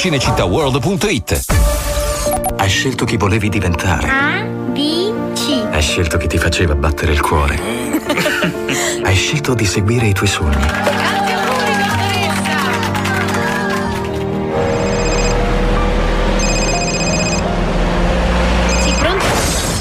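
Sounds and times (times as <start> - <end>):
speech: 0.0 - 5.0, 5.8 - 11.2
music: 0.0 - 19.8
laughter: 7.6 - 9.2, 10.5 - 14.1
telephone ringing in repeated electronic bursts: 14.6 - 15.5, 16.4 - 17.5, 18.7 - 19.2.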